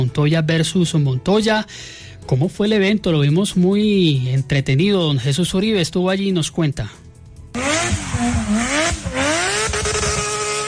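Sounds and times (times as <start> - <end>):
speech: 0.0 - 7.0
race car engines roaring as cars accelerate and shift gears: 7.6 - 10.6.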